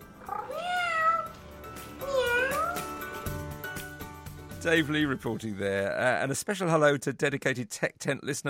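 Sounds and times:
fluffy battery-powered robotic toy cat meowing: 0.2s - 1.4s, 2.0s - 2.9s
speech: 4.6s - 8.4s.

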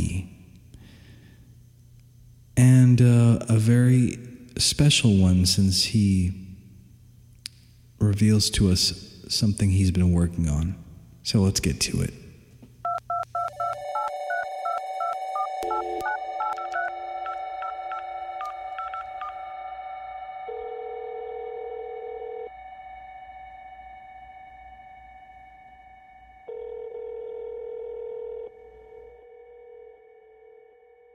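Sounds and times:
speech: 3.0s - 6.4s, 8.0s - 12.2s
touch-tone dialing beeps: 12.9s - 19.4s
ringback tones of an outgoing phone call: 12.9s - 19.6s, 20.4s - 22.8s, 26.5s - 31.1s.

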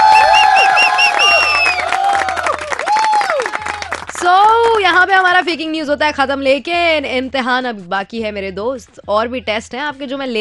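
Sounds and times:
high whistles from a crowd: 0.0s - 2.0s
excited whoops from a crowd: 0.0s - 4.0s
crowd cheering: 0.0s - 4.2s
crowd applause: 0.0s - 4.7s
speech: 5.4s - 10.3s.

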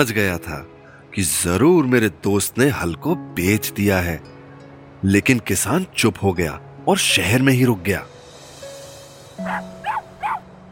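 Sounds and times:
speech: 0.0s - 4.3s, 5.0s - 8.1s, 9.4s - 9.7s
dog barking in short yaps: 9.5s - 10.4s.

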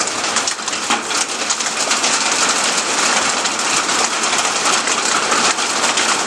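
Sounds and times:
hail falling during a thunderstorm: 0.0s - 6.2s.

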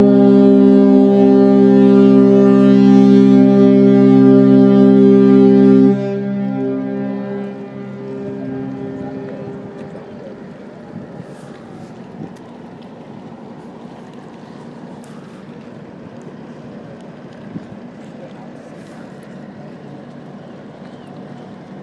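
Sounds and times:
horn blast: 0.0s - 10.7s.

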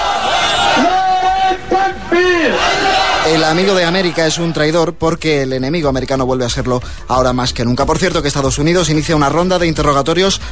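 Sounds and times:
crowd of protesters shouting and chanting slogans: 0.0s - 3.4s
speech: 3.3s - 10.4s.

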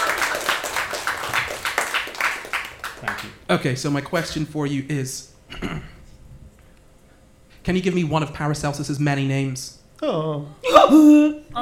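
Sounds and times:
small group clapping: 0.0s - 4.3s
speech: 3.5s - 5.9s, 7.7s - 11.6s.

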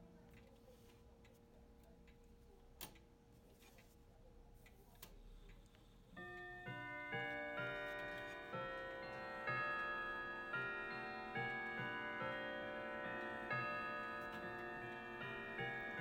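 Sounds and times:
clock ticking: 6.2s - 15.9s.

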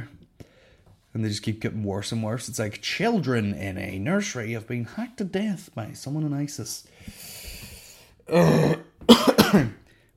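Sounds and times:
speech: 1.2s - 7.2s, 8.3s - 8.8s
person coughing into the microphone: 8.3s - 9.8s.

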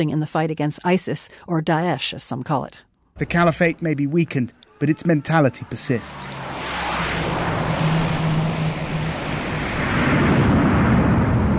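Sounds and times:
speech: 0.0s - 6.6s
military transport plane landing on a dirt runway: 3.2s - 11.5s.

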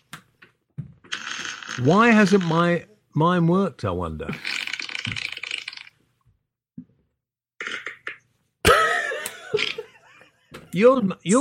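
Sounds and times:
speech: 1.8s - 5.2s, 10.8s - 11.4s
sputtering fart sounds: 4.3s - 5.9s, 7.6s - 8.3s.

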